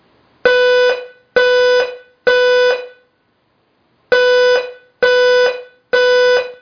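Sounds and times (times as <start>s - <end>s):
Alarm 520 square tone: 0.5s - 3.1s, 4.1s - 6.5s.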